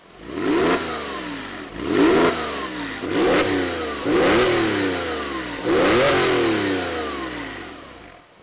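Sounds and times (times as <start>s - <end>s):
car sport exhaust: 0.0s - 8.4s.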